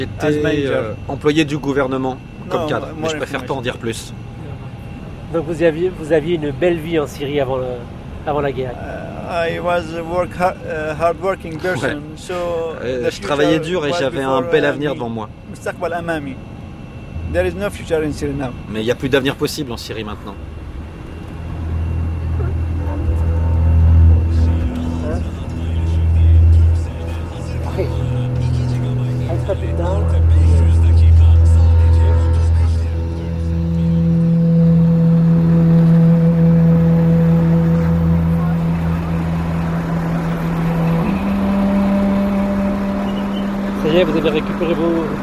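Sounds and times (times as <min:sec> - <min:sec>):
speech: 0:00.0 - 0:04.3, 0:05.3 - 0:16.5, 0:17.3 - 0:20.5
heavy bus engines idling at a bus station: 0:00.0 - 0:45.2
busy outdoor din: 0:20.4 - 0:43.8.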